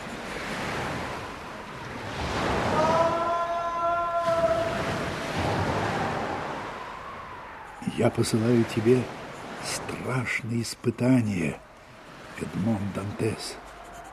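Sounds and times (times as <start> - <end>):
heavy stormy sea waves surging and crashing: 0.0 - 14.1
eerie howling tone: 2.7 - 8.5
speech: 8.0 - 11.6, 12.4 - 13.6.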